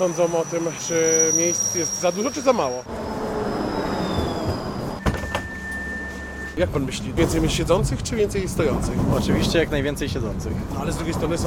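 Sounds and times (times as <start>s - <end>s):
speech: 0.0s - 3.2s, 6.6s - 11.4s
low-floor tram arriving at a stop in Łódź: 0.0s - 11.4s
sharp clunks of low-floor tram doors: 3.2s - 11.4s.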